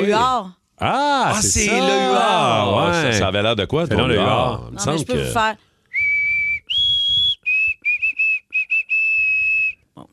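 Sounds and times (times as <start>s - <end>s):
speech: 0.0s - 5.7s
person whistling an imitation of a small woodpecker's morning song: 5.9s - 9.8s.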